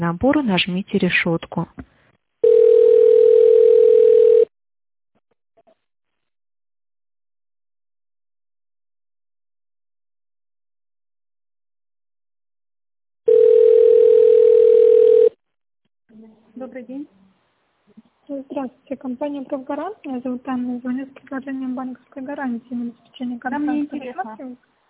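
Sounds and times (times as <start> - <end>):
speech: 0.0 - 1.9, 16.2 - 17.2, 18.3 - 24.7
telephone ringback tone while waiting for an operator: 2.4 - 4.5, 13.3 - 15.4.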